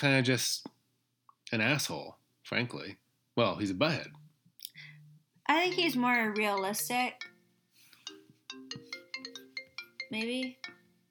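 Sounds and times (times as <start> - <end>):
speech: 0.0 - 0.7, 1.5 - 4.2, 5.5 - 7.3, 10.1 - 10.8
melodic phone ringtone playing through a computer: 4.9 - 11.0.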